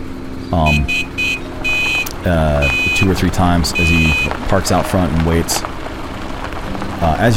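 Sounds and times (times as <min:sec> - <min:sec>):
speech: 0:00.5 - 0:01.4, 0:02.2 - 0:05.8, 0:07.0 - 0:07.3
car horn honking: 0:00.6 - 0:05.5.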